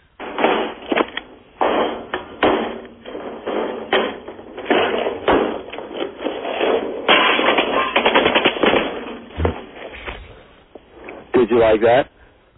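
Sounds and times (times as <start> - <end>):
machine-gun fire sound effect played from a CD: 0.0 - 10.0
speech: 11.6 - 12.1.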